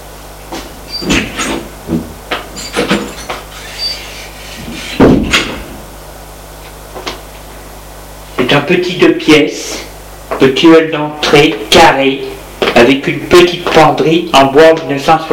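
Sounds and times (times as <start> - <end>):
door thud: 5.0 - 5.7
speech: 8.6 - 15.3.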